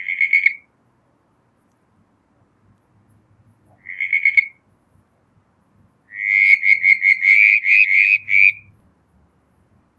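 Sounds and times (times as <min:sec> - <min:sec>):
southern brown tree frog calling, Litoria ewingii: 0:00.0 - 0:00.7, 0:03.7 - 0:04.6, 0:06.1 - 0:08.7.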